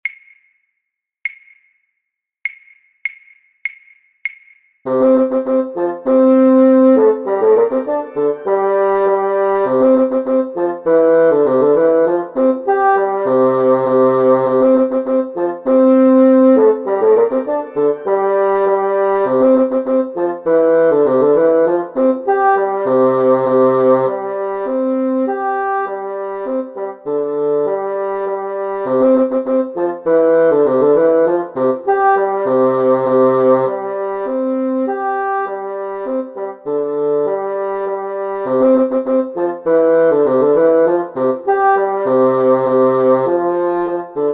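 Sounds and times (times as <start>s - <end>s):
bass flute: 4.9s - 44.3s.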